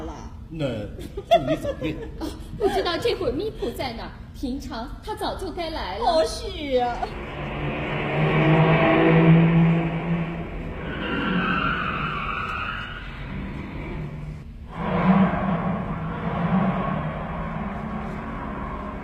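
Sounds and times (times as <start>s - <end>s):
speech: 0.5s - 7.5s
laughter: 1.0s - 3.2s
car engine rumbling while driving away: 7.0s - 19.0s
tyre and road noise: 7.1s - 19.0s.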